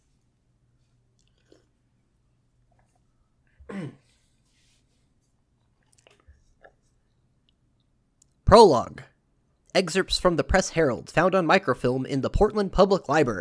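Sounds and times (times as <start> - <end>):
sipping and gulping a drink: 1.0 - 3.2, 5.5 - 8.4
speech: 8.5 - 9.1, 9.8 - 13.3.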